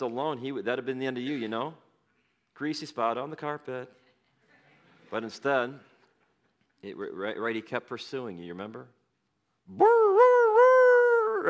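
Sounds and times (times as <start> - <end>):
speech: 0.0 - 1.8, 2.6 - 4.0, 5.1 - 5.9, 6.8 - 9.0, 9.7 - 10.3
person imitating a hound dog's howl: 9.7 - 11.4.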